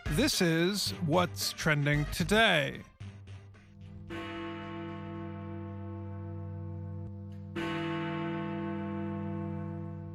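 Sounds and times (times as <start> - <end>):
speech: 0.1 - 2.9
large clock tower bell in London striking the hour: 3.9 - 10.1.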